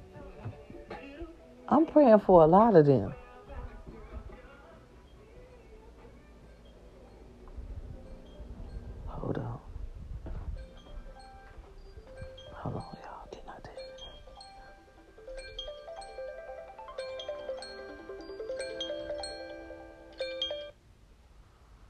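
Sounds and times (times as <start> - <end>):
speech: 1.7 - 3.2
iPhone alarm electronic melody of chiming tones: 10.6 - 20.8.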